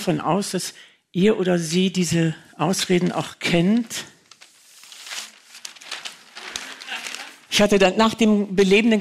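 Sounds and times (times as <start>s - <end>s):
speech: 0.0s - 4.1s, 7.6s - 9.0s
paper crinkling and rustling: 2.9s - 7.8s
long paper roll being unrolled: 3.8s - 7.7s.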